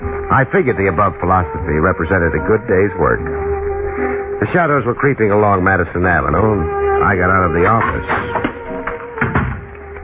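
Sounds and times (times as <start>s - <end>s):
speech: 0.3s - 8.5s
door shut with a soft thud: 7.7s - 10.0s.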